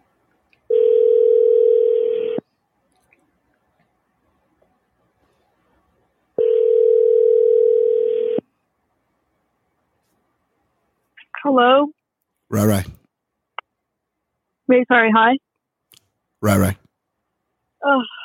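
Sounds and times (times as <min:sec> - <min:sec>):
electronic ringback tone through a phone: 0:00.7 - 0:02.4, 0:06.4 - 0:08.4
speech: 0:11.6 - 0:13.0, 0:14.7 - 0:15.5, 0:16.4 - 0:16.8, 0:17.8 - 0:18.2.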